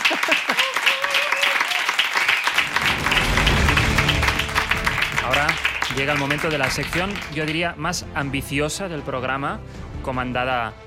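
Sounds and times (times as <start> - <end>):
crowd applauding: 0.0 - 7.8
speech: 6.0 - 10.8.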